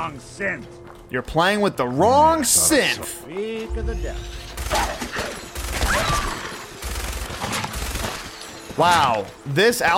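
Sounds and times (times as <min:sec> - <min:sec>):
speech: 0:00.0 - 0:05.0, 0:08.8 - 0:09.9
first-person shooter video game gunfire: 0:04.6 - 0:08.4.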